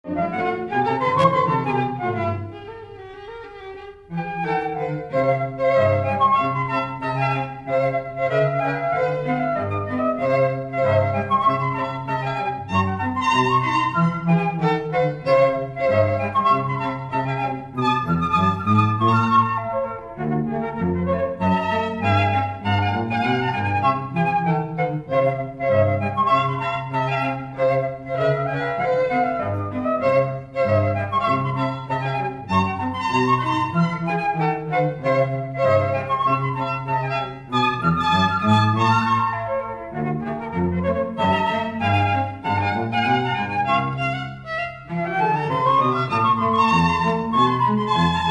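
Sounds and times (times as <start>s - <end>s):
cello: 0.0s - 48.2s
flute: 0.0s - 48.2s
violin: 0.0s - 48.2s.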